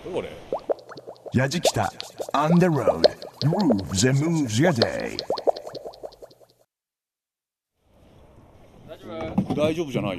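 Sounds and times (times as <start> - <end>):
speech: 0.0 - 0.6, 1.3 - 5.3, 9.6 - 10.1
water washing from a rowboat: 0.6 - 6.4.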